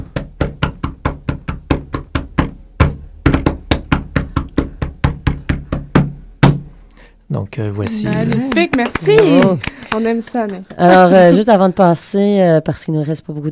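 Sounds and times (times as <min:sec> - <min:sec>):
jig step-dancing foot taps: 0:00.0 - 0:06.7, 0:08.1 - 0:11.0
speech: 0:07.4 - 0:13.5
laughter: 0:07.9 - 0:11.6.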